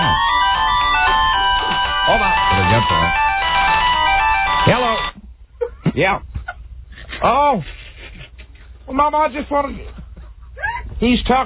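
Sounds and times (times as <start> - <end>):
mobile phone ringtone: 0.0 - 5.2
speech: 6.0 - 6.4, 7.2 - 7.8, 8.9 - 10.0, 11.0 - 11.4.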